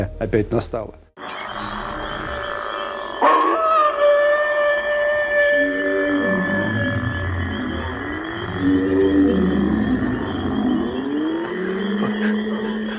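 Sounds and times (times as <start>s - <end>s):
speech: 0.0s - 1.4s
dog howling in eerie wails: 2.7s - 12.9s.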